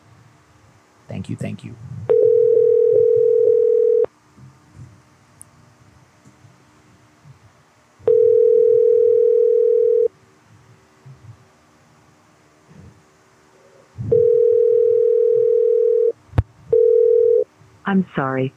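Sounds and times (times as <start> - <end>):
speech: 1.1 - 2.1, 17.9 - 18.5
telephone line tone while calling someone back: 2.1 - 4.1, 8.1 - 10.1, 14.1 - 17.5.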